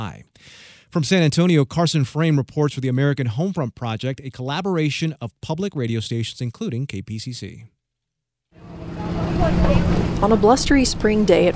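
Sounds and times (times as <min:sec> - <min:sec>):
speech: 0:00.0 - 0:07.8, 0:09.4 - 0:11.5
several car engines idling outdoors: 0:08.6 - 0:11.5.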